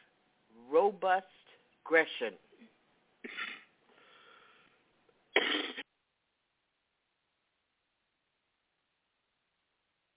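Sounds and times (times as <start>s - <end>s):
speech: 0.8s - 3.4s
person coughing: 3.2s - 3.7s, 5.3s - 5.8s
raspy breath: 3.9s - 4.8s.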